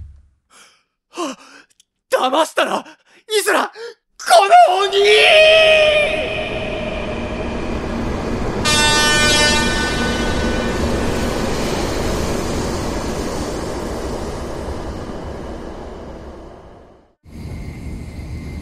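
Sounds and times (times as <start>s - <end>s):
speech: 2.2s - 5.4s
train rumbling along the rails: 5.2s - 18.6s
bright sustained horn-like tone: 6.3s - 11.3s.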